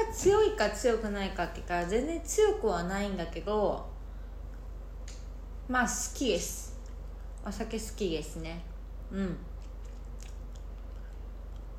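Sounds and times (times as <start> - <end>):
speech: 0.2 - 4.0, 5.7 - 6.7, 7.4 - 9.5
chewing akamoku seaweed: 9.4 - 11.7.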